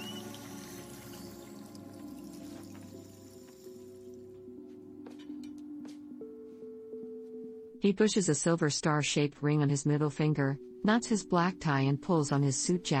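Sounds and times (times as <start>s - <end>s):
water running from a tap at a hotel bathroom sink while a man washes his hands: 0.0s - 4.1s
speech: 7.8s - 12.9s.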